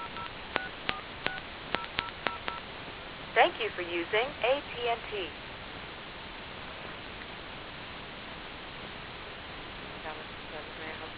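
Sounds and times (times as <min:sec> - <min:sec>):
telephone keypad dialing tones: 0:00.0 - 0:02.6
speech: 0:03.4 - 0:05.4.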